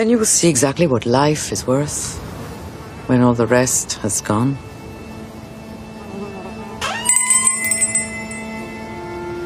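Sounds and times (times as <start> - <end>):
speech: 0.0 - 2.3, 3.1 - 4.7
bric-a-brac shop door bell jingling as someone enters: 6.9 - 8.9.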